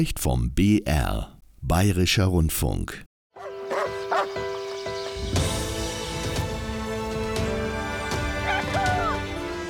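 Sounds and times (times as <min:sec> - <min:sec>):
speech: 0:00.0 - 0:03.1
dog giving short yipping barks: 0:03.4 - 0:04.4
steady musical background: 0:03.4 - 0:09.6.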